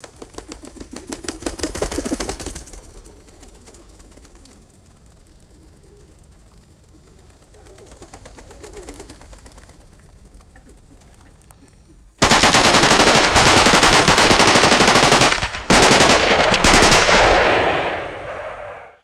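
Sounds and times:
pigeon wings fluttering: 0.0s - 11.5s, 12.2s - 17.4s
echoing rifle shots: 12.2s - 19.0s.

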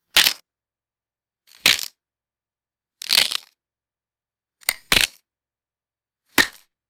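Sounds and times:
short crisp vegetable snaps and crunches: 0.1s - 0.4s, 1.5s - 2.0s, 3.0s - 3.6s, 4.6s - 5.3s, 6.4s - 6.7s.

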